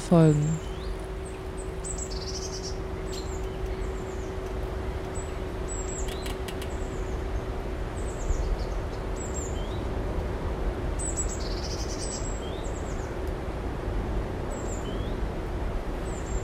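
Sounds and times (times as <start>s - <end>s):
faint rumbling drone from a sewage treatment plant: 0.0s - 16.4s
low mechanical hum from a sewage treatment plant: 0.0s - 16.4s
speech: 0.1s - 0.7s
birds chirping and trilling: 0.1s - 9.8s, 11.0s - 13.1s.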